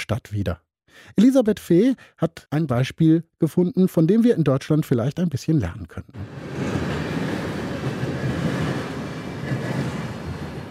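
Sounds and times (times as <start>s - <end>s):
speech: 0.1s - 6.9s
passenger train rumbling on railway tracks: 6.2s - 10.6s.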